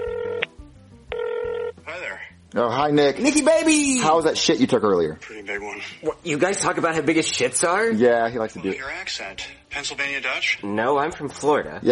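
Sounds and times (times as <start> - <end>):
telephone ringing on an outgoing call: 0.0 - 0.5, 1.1 - 1.8
speech: 2.5 - 11.9.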